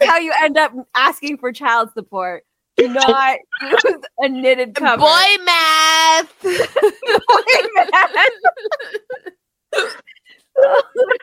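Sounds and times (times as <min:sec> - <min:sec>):
speech: 0:00.0 - 0:11.2
laughter: 0:02.8 - 0:04.0, 0:06.4 - 0:09.3, 0:10.6 - 0:11.2
sharp hiccups: 0:03.0 - 0:04.0.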